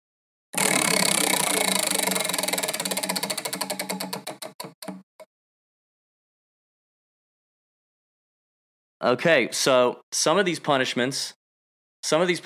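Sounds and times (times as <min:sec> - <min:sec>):
prize wheel spinning and clicking: 0:00.6 - 0:05.0
speech: 0:09.0 - 0:11.4, 0:12.0 - 0:12.4.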